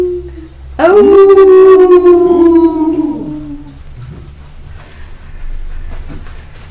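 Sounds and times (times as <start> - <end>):
person imitating a wolf's howl: 0.0 - 3.8
low hum: 0.0 - 6.7.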